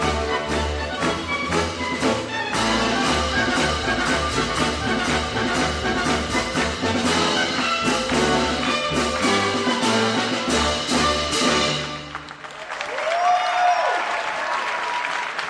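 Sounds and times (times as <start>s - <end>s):
large concert audience clapping along in rhythm: 0.0s - 9.8s, 11.9s - 15.4s
loud concert music: 0.0s - 12.2s
scattered applause and crowd noise: 0.0s - 15.4s.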